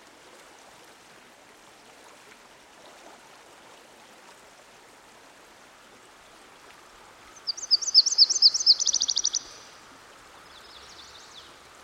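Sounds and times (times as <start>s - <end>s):
stream gently rushing: 0.0s - 11.8s
Myrtle warbler song with chirps and rapid trill: 7.4s - 9.7s.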